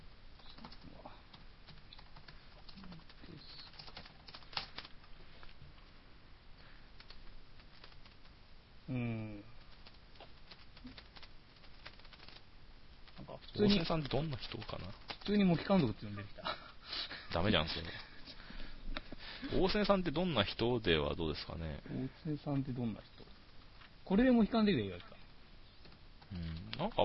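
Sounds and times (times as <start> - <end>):
typing in katakana on a computer keyboard: 0.4 - 5.1, 7.0 - 8.3, 9.6 - 12.4, 13.8 - 15.4
speech: 13.6 - 16.6, 17.3 - 18.1, 19.5 - 23.2, 24.1 - 25.1, 26.3 - 27.0.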